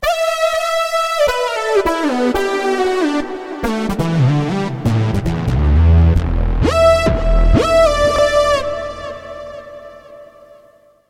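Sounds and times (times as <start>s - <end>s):
keyboard lead: 0.0s - 10.8s.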